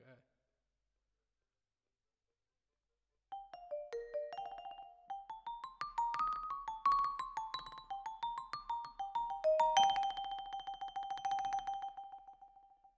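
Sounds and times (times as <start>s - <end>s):
vibraphone: 3.3s - 12.8s.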